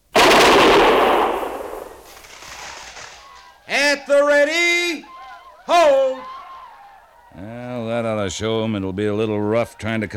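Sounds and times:
soldiers firing a volley of gunfire on command: 0.0 - 3.2
speech: 4.0 - 5.1, 8.3 - 10.1.

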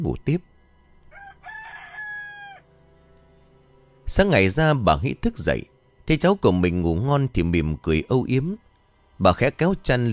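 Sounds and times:
speech: 0.0 - 0.5, 4.1 - 8.6, 9.2 - 10.1
faint rooster crowing: 1.0 - 2.8.

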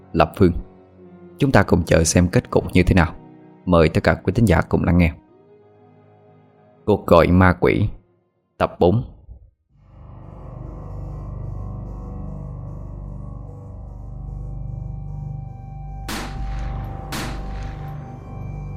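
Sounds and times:
speech: 0.1 - 0.6, 1.4 - 5.2, 6.9 - 8.0, 8.6 - 9.1
steady low droning background: 9.8 - 18.7
gunshots in an audio drama: 16.1 - 18.4.

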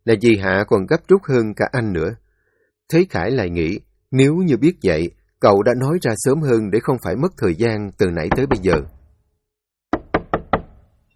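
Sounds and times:
speech: 0.0 - 2.2, 2.9 - 9.0
sharp knocks on a room door: 8.2 - 9.0, 9.9 - 10.9.

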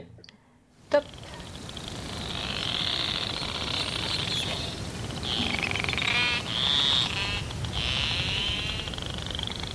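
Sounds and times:
noisy broadband sweeps: 0.8 - 9.7
speech: 0.9 - 1.2
narwhal buzzing click creaks: 0.9 - 9.7.

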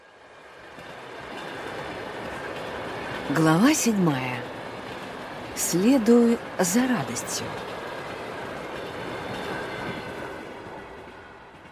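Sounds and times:
train carriage rolling on rails, heard from inside: 0.0 - 11.6
speech: 3.3 - 4.6, 5.6 - 7.8.

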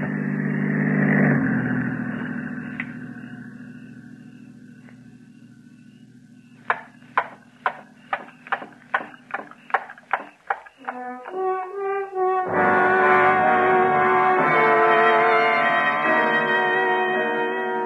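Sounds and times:
patrol car engine humming: 0.0 - 17.8
sharp clicks: 6.6 - 11.4.

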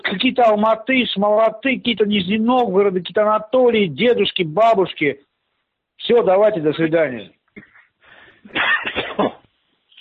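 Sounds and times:
speech: 0.1 - 5.3, 6.0 - 7.7
person coughing down a telephone line: 8.5 - 9.5.

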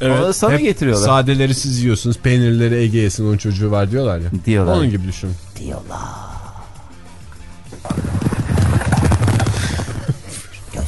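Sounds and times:
speech: 0.0 - 6.3
horses clip-clopping: 7.6 - 10.5.

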